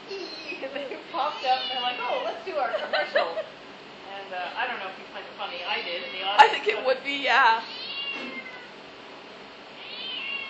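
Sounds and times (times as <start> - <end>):
cat meowing: 0.2 - 0.4, 1.3 - 2.1, 7.6 - 8.8, 9.8 - 10.4
speech: 0.6 - 3.6, 4.2 - 8.5.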